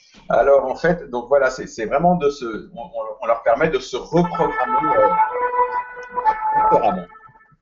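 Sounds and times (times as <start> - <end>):
speech: 0.3 - 7.2
indistinct voice: 1.8 - 7.2
emergency vehicle siren passing outside: 4.2 - 7.6.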